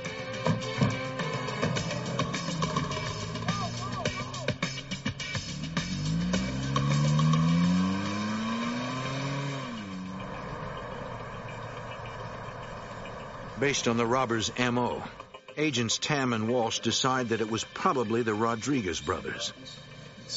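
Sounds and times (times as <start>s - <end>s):
car engine revving and accelerating hard as it speeds off: 0.4s - 15.4s, 17.0s - 20.3s
indistinct voices: 1.5s - 5.0s, 10.0s - 20.3s
speech: 13.6s - 20.3s.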